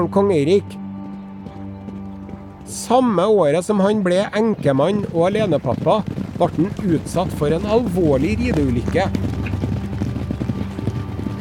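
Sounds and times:
speech: 0:00.0 - 0:00.8, 0:02.7 - 0:09.4
horse hooves clip-clopping as a horse is ridden: 0:00.0 - 0:11.3
low rumbling background: 0:00.0 - 0:11.3.

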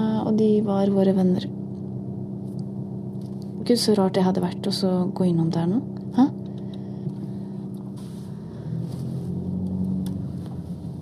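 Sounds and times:
speech: 0:00.3 - 0:01.6, 0:03.6 - 0:06.4
car engine rumble from a car driving past a house: 0:07.9 - 0:11.0.

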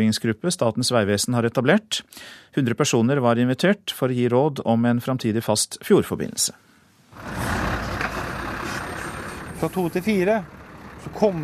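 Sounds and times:
speech: 0:00.0 - 0:07.6, 0:09.6 - 0:11.4
broadband road noise: 0:07.1 - 0:11.4
heavy semi-trailer truck engine droning near ferry quay: 0:07.1 - 0:11.4.

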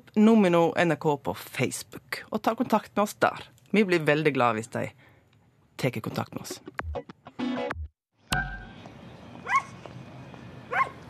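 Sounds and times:
speech: 0:00.2 - 0:05.0, 0:05.8 - 0:07.1
dog barking: 0:09.4 - 0:09.8, 0:10.7 - 0:11.0.

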